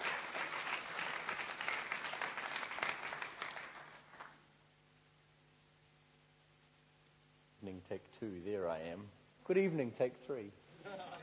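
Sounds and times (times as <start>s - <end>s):
room full of people applauding to welcome a speaker at an evening gathering: 0.0s - 4.4s
speech: 7.7s - 11.2s.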